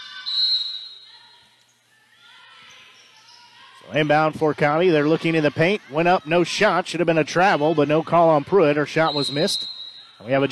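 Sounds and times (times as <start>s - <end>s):
referee's whistle blast for a foul: 0.0s - 1.1s, 9.0s - 10.2s
faint hum: 0.0s - 10.4s
speech: 3.8s - 10.4s.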